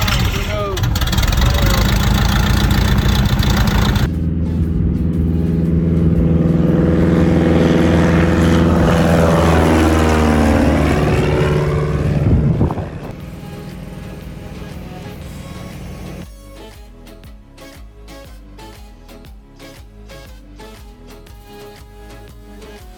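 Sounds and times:
propeller airplane engine roaring in flight as the aircraft climbs: 0.0 - 16.3.

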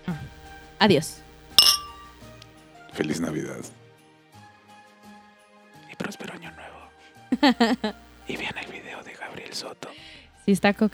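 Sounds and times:
speech: 0.8 - 1.2, 3.0 - 3.8, 7.4 - 8.7, 9.4 - 10.9
glasses clinking in a toast: 1.3 - 2.4
laughter: 7.4 - 8.0.

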